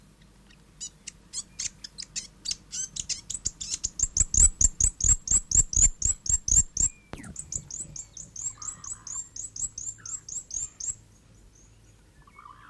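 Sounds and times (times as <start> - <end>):
South Island fantail song of squeaky chips and ticking notes: 1.4 - 11.0.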